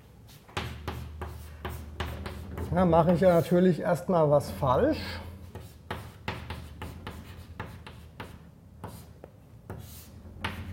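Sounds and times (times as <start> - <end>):
handwriting while working out a math calculation: 0.3 - 3.4, 5.4 - 10.7
speech: 2.7 - 5.2.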